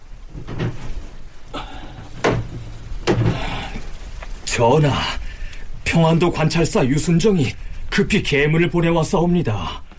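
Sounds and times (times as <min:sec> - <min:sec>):
sudden hail pouring down in Pyeongan Province Korea: 0:00.0 - 0:09.9
speech: 0:04.6 - 0:05.2, 0:05.9 - 0:09.9.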